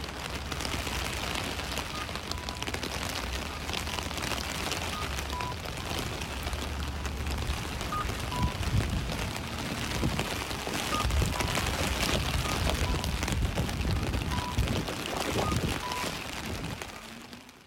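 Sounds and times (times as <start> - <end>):
heavy rain drumming on an ordinary umbrella while walking through a city: 0.0 - 17.6
faint repeated electronic beeps of a crossing signal: 1.8 - 2.8, 4.8 - 6.0, 7.9 - 8.6, 10.8 - 13.2, 13.9 - 16.2.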